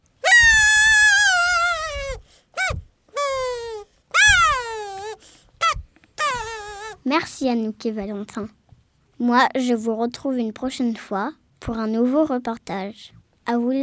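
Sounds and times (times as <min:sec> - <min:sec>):
homemade popsicle-stick kazoo being blown: 0:00.2 - 0:07.0
speech: 0:07.2 - 0:08.6, 0:09.2 - 0:13.8.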